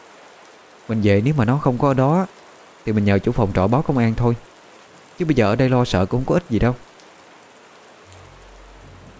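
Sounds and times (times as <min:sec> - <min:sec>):
heavy rain: 0:00.0 - 0:09.1
speech: 0:00.9 - 0:04.5, 0:05.2 - 0:06.8
deeper low rumble: 0:08.1 - 0:09.1.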